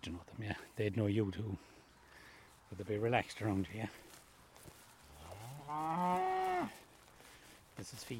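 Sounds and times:
speech: 0:00.0 - 0:01.8, 0:02.7 - 0:04.1, 0:05.7 - 0:06.8, 0:07.8 - 0:08.1
cow mooing: 0:05.2 - 0:06.8.

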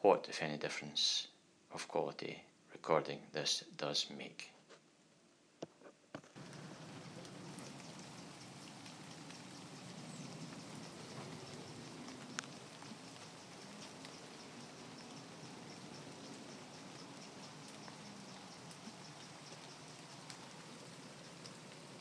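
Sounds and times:
speech: 0:00.0 - 0:04.6
scattered raindrops ticking: 0:06.4 - 0:21.9
steady rain falling straight down with no wind: 0:06.4 - 0:21.9.

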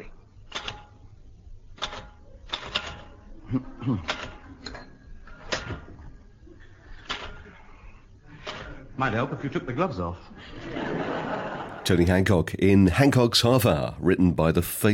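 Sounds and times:
typewriter keys clacking: 0:01.8 - 0:03.2
speech: 0:03.5 - 0:04.3, 0:09.0 - 0:11.0, 0:11.9 - 0:14.9
laughter: 0:08.3 - 0:12.2.

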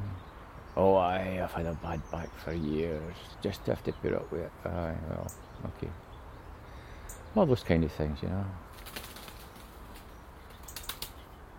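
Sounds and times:
speech: 0:00.8 - 0:06.0, 0:07.3 - 0:09.0
wood pigeons flapping their wings: 0:08.7 - 0:11.3.

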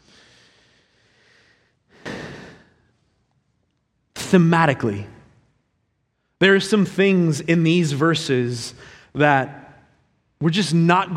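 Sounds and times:
person taking a sharp loud breath: 0:00.0 - 0:02.9
speech: 0:04.3 - 0:05.1, 0:06.4 - 0:09.6, 0:10.4 - 0:11.1.

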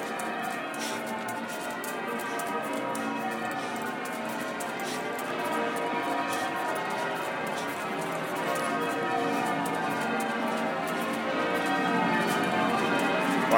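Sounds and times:
cathedral church bells pealing: 0:00.0 - 0:13.5
faint street noise: 0:00.0 - 0:13.5
footsteps walking down a road: 0:00.0 - 0:13.5.

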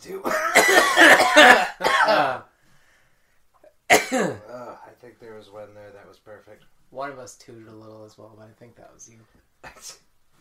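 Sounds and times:
speech: 0:00.0 - 0:00.4, 0:05.2 - 0:10.1
two people coughing together: 0:00.2 - 0:02.5, 0:03.9 - 0:04.4.

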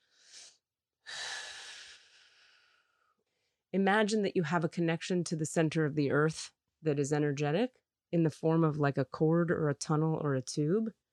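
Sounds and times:
deep breaths drawn into the low belly: 0:00.0 - 0:03.6
speech: 0:03.7 - 0:11.0.

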